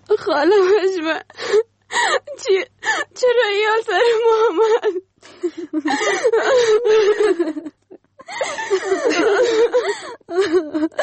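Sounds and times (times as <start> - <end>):
speech: 0.2 - 1.7, 2.4 - 11.0
person crying with wavering sobs and gasps: 1.4 - 3.2, 4.0 - 11.0.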